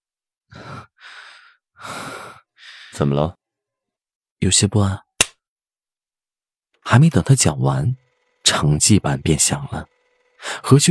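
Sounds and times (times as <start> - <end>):
forceful deep breaths: 0.5 - 3.0
speech: 3.0 - 3.4, 4.4 - 5.1, 6.9 - 10.8.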